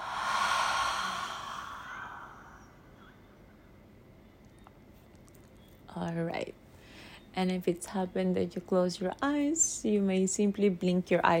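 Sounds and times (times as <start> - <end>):
slow exhale sighed out through an open mouth during a relaxation breathing exercise: 0.0 - 3.4
speech: 6.0 - 6.6, 7.4 - 11.3.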